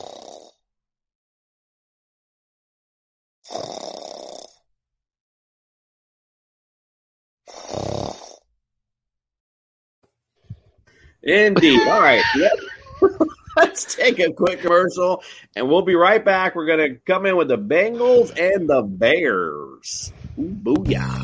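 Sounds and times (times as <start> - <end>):
loud rasping snores: 0.0 - 0.6, 3.5 - 4.6, 7.5 - 8.5
speech: 11.2 - 21.2
laughter: 11.3 - 15.3.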